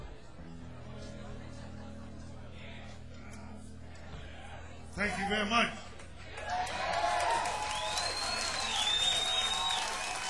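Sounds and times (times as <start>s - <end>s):
speech: 5.0s - 5.8s
audience applause for the opening band: 6.4s - 10.2s
cheers: 6.4s - 10.2s
sharp whistles: 7.7s - 10.1s.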